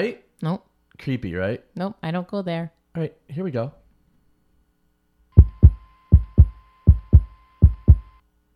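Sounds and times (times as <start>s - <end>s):
speech: 0.0s - 3.8s
faint steady hum: 0.0s - 8.5s
deep lub-dub heartbeat thumping: 5.4s - 8.1s.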